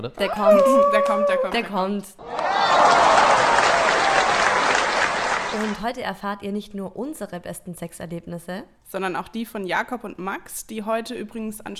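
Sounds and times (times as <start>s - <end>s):
speech: 0.0s - 2.4s, 5.5s - 11.7s
crowd applauding: 2.2s - 5.8s
laughter: 2.3s - 5.7s.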